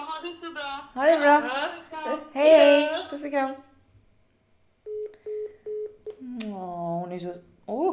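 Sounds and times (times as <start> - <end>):
speech: 0.6 - 3.7, 6.6 - 7.9
phone keypad dialing tones from an accidental call: 4.8 - 6.1.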